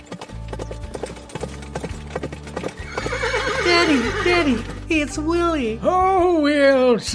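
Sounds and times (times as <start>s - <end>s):
horse hooves clip-clopping: 0.0s - 5.8s
horse whinnying: 2.7s - 4.9s
speech: 3.9s - 7.1s.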